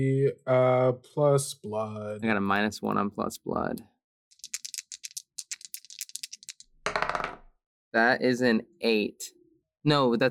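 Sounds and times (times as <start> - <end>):
speech: 0.0 - 3.9, 7.9 - 10.2
dice rattling in a cupped hand: 4.3 - 7.4.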